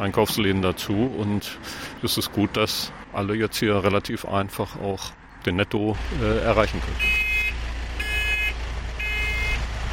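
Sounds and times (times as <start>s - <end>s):
speech: 0.0s - 7.3s
community minibus pulling away from a supermarket stop: 0.0s - 9.9s.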